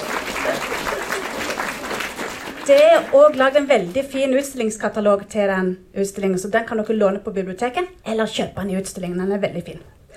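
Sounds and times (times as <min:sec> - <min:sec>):
audience applause: 0:00.0 - 0:03.9
speech: 0:02.7 - 0:10.0.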